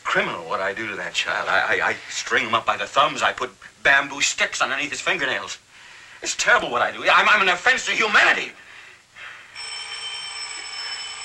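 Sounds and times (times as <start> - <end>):
speech: 0.2 - 8.6
telephone ringing with bright electronic tone: 9.6 - 11.2.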